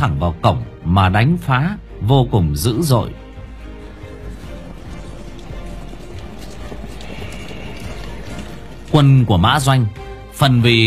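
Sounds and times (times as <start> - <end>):
speech: 0.0 - 3.2, 8.9 - 10.8
horses galloping away as troops flee a battle: 3.3 - 10.0.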